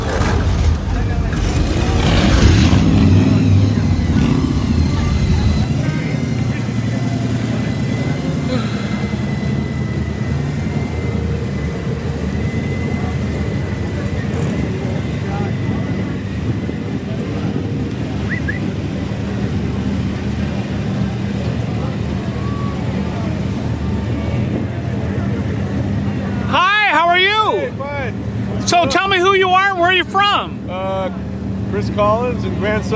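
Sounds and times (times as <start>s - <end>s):
car engines idling at an outdoor car show: 0.0s - 32.9s.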